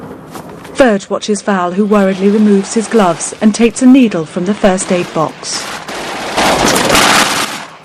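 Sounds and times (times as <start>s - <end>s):
speech: 0.8s - 5.8s
machine gun fire at a circling German fighter plane: 4.9s - 7.8s.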